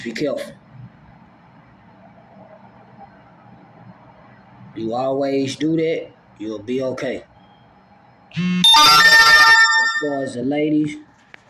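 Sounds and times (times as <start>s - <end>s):
speech: 0.0s - 0.6s, 4.8s - 7.3s, 8.3s - 9.3s, 10.0s - 11.1s
phone notification alert tones: 8.4s - 10.3s.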